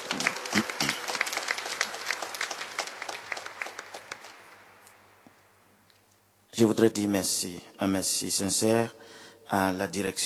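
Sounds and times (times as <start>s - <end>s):
audience applause at a ceremony: 0.0s - 5.3s
speech: 6.6s - 10.2s.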